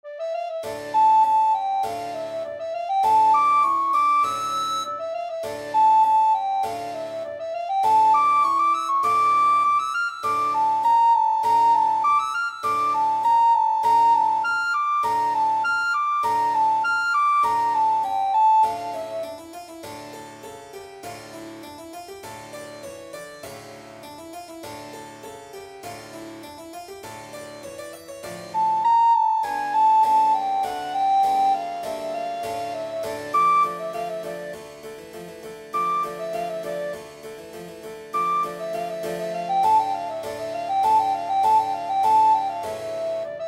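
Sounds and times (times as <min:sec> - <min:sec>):
recorder playing a tambourin suite in E minor: 0:00.1 - 0:19.4, 0:28.3 - 0:34.7, 0:35.8 - 0:37.1, 0:38.1 - 0:43.4.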